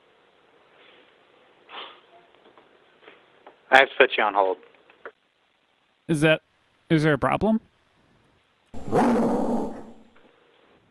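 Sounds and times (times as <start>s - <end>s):
speech: 3.7s - 4.7s, 6.1s - 7.7s
dog growling and barking: 8.8s - 10.2s.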